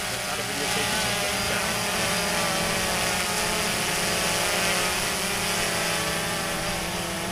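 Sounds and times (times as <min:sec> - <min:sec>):
drones flying and whizzing by: 0:00.0 - 0:07.3.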